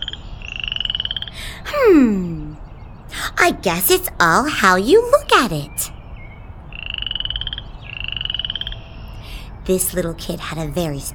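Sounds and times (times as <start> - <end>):
frog on a sidewalk croaking in buzzing trills: 0.0 - 1.5, 6.7 - 9.0
speech: 1.6 - 2.4, 3.4 - 6.0, 9.6 - 11.1.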